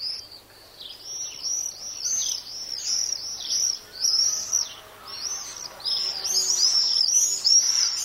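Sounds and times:
common swifts screeching in summer: 1.6s - 8.0s.

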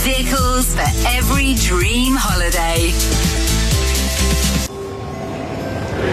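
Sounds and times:
speech: 0.1s - 3.5s
train rumbling on rails: 4.7s - 6.1s.

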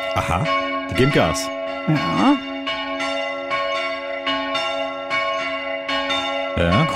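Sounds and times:
church bells ringing: 0.0s - 6.9s
speech: 0.2s - 2.5s, 6.6s - 6.9s.

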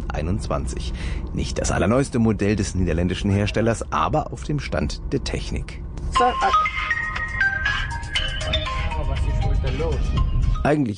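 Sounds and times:
steady low rumble inside the cab of a 2021 DAF XF truck: 0.0s - 10.7s
speech: 0.2s - 6.9s, 9.6s - 10.9s
phone ringing with an incoming call inside a truck cab: 6.2s - 10.7s.

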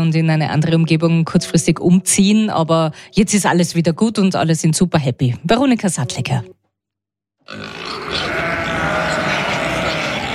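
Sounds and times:
speech: 0.0s - 6.6s, 7.5s - 8.2s
pigs grunting in a home stable on a farm in Hendorf: 7.5s - 10.3s
sheep bleating in a home stable on a farm in Hendorf: 7.5s - 10.3s.

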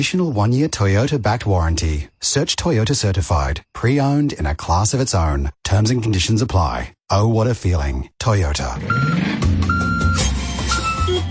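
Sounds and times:
speech: 0.0s - 9.5s
delivery truck engine rumbling: 8.6s - 11.2s
high electronic reversing beeps of a delivery truck: 8.8s - 11.2s.

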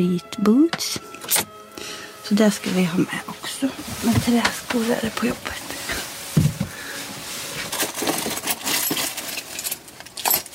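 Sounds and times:
speech: 0.0s - 5.6s
bunch of keys jangling: 7.7s - 10.5s.

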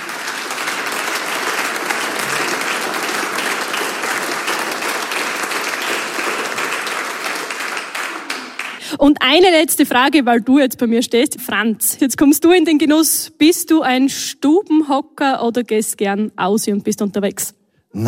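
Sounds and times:
sizable audience applauding a clarinet quartet: 0.0s - 8.9s
speech: 9.0s - 18.0s.

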